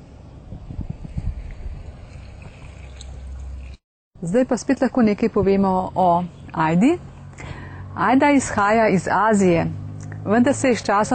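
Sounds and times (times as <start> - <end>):
water sloshing in a cooking pot: 0.8 - 3.8
speech: 4.2 - 7.1, 8.0 - 11.1.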